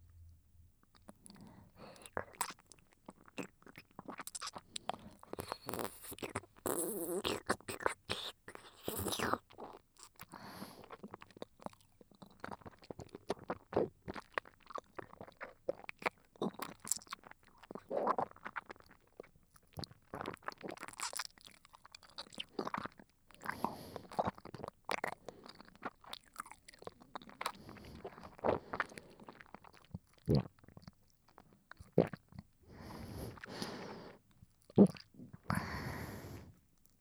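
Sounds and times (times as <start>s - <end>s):
eating and chewing close to the ear: 0.9s - 37.0s
soft breathy sounds: 32.7s - 34.2s, 35.5s - 36.6s.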